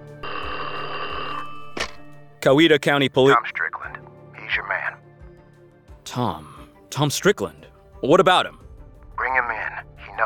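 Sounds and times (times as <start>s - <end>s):
telephone bell ringing: 0.2s - 2.2s
speech: 2.4s - 3.6s, 6.1s - 8.6s.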